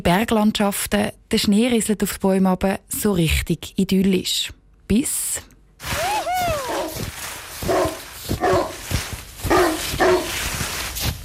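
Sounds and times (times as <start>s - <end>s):
speech: 0.0s - 6.6s
steady hiss of outdoor noise: 0.0s - 11.2s
dog whining: 5.9s - 7.0s
dog barking: 6.6s - 7.0s, 7.6s - 10.6s.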